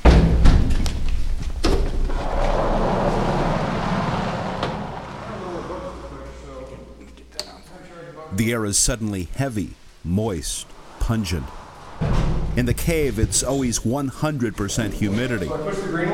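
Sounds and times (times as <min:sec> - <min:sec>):
heavy airlock doors shutting in a man-made cave tunnel: 0:00.0 - 0:06.3, 0:10.7 - 0:14.8
speech: 0:08.4 - 0:11.6, 0:12.6 - 0:16.1.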